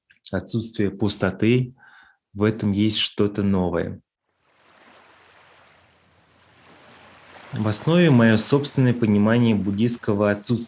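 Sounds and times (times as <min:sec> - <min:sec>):
speech: 0:00.3 - 0:04.1, 0:07.5 - 0:10.6
sea waves rolling onto the shore: 0:04.4 - 0:10.6.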